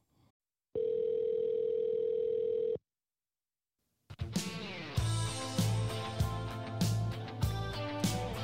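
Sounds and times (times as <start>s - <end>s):
telephone call connecting tone: 0.8s - 2.8s
upbeat music with driving beat: 4.2s - 8.4s.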